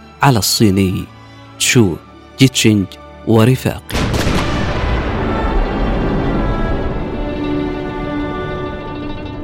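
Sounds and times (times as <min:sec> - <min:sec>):
speech: 0:00.2 - 0:04.2
sharp booming cannon shot: 0:03.9 - 0:06.7
sustained loud rumbling explosion: 0:03.9 - 0:08.6.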